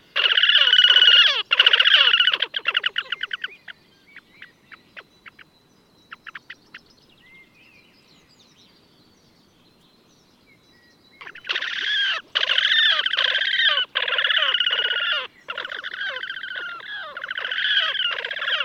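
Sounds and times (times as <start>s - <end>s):
Podiceps auritus horned grebe loud rippling nasal trills: 0.0s - 3.8s, 11.2s - 18.6s.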